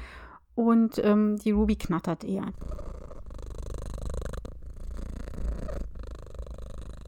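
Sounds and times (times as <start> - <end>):
speech: 0.6 - 2.8
domestic cat purring: 2.4 - 7.0.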